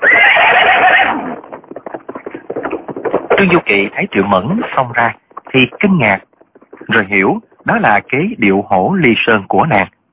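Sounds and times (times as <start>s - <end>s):
horse whinnying after being stabbed in the rump with a sword: 0.0s - 3.4s
quick hoofbeats of a bolting horse: 0.0s - 9.3s
speech: 3.4s - 6.3s, 6.9s - 10.0s.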